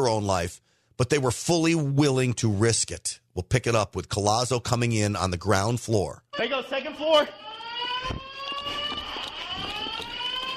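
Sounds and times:
speech: 0:00.0 - 0:07.4
fire alarm blaring indoors in a school building: 0:06.3 - 0:10.5
faint footsteps and movement: 0:07.8 - 0:10.5.

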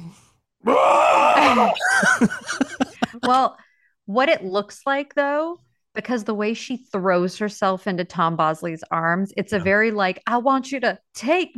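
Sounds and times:
woman screaming in a TV clip: 0:00.6 - 0:01.9
woman's shorter wavering vocal cries: 0:00.6 - 0:02.3
laughter: 0:01.4 - 0:03.5
speech: 0:01.6 - 0:11.5.

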